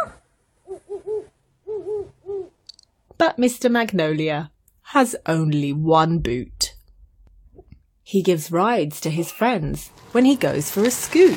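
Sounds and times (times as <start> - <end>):
owl hooting: 0.0 - 2.6
speech: 3.2 - 6.5, 8.1 - 11.3.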